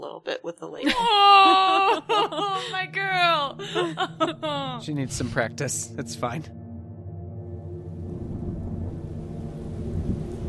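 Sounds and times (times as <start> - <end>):
speech: 0.2 - 1.3, 3.8 - 6.6
laughter: 0.8 - 5.4
howling blustering wind: 7.5 - 10.4
thunderstorm with deep rumbling thunder: 7.5 - 10.4
pelting heavy rain: 8.0 - 10.4.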